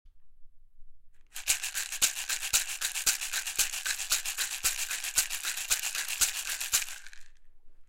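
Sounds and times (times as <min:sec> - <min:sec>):
rattle: 0:01.2 - 0:07.4.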